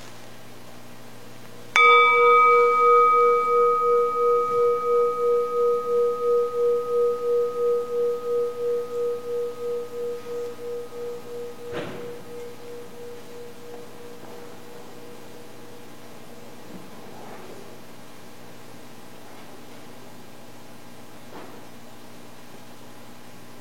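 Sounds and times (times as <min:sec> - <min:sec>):
meditation bell ringing: 0:01.7 - 0:17.4
soft knock: 0:11.7 - 0:12.5.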